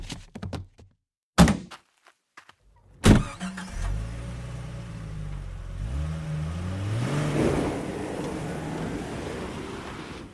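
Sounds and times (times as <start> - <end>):
car trunk slammed shut: 3.0 - 3.4
car engine starting and revving as the car drives off: 3.1 - 10.3.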